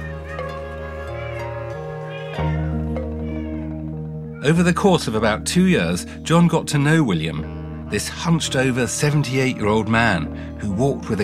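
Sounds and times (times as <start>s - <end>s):
many cats meowing in a house: 0.0s - 4.7s
speech: 4.4s - 11.2s.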